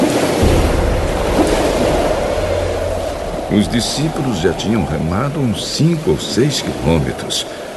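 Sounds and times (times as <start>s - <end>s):
strong wind roaring after dark: 0.0s - 7.3s
churning rising waves with deep low rumble: 0.0s - 7.7s
speech: 3.5s - 7.7s.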